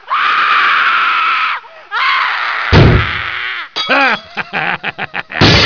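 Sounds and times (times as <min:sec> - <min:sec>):
woman screaming: 0:00.1 - 0:03.7
laughter: 0:03.9 - 0:05.5.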